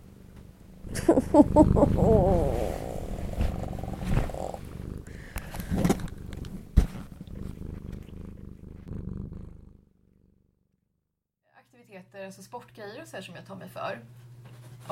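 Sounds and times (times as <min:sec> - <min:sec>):
cat purring: 0:00.0 - 0:10.7
laughter: 0:00.9 - 0:02.4
speech: 0:01.0 - 0:02.7, 0:12.3 - 0:14.3
bumps and rustles: 0:03.2 - 0:04.9, 0:05.5 - 0:08.9.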